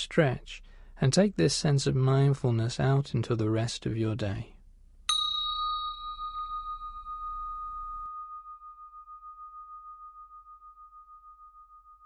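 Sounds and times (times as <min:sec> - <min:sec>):
speech: 0:00.0 - 0:04.5
meditation bell ringing: 0:05.1 - 0:12.0.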